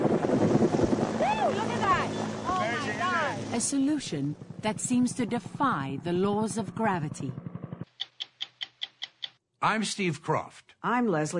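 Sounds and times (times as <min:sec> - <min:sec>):
helicopter flying overhead: 0:00.0 - 0:08.8
speech: 0:03.6 - 0:07.4, 0:09.6 - 0:11.3.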